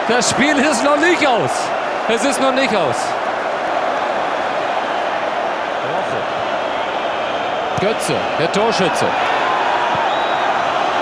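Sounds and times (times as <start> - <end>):
male football commentator speaking: 0.0 - 3.2, 7.8 - 9.2
stadium crowd of German football fans roaring and cheering: 0.0 - 11.0
speech: 0.1 - 3.2, 7.8 - 9.3.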